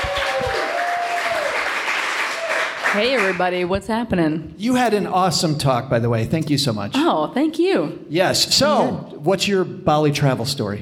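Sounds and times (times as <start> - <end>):
crowd applauding: 0.0 - 3.4
speech: 3.0 - 10.7.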